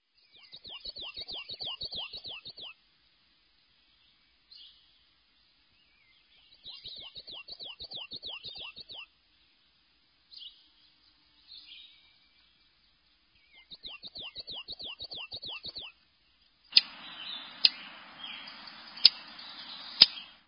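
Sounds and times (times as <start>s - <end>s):
Black and White Warbler: 0.2s - 2.8s, 6.4s - 9.1s, 13.4s - 16.0s, 16.7s - 20.4s.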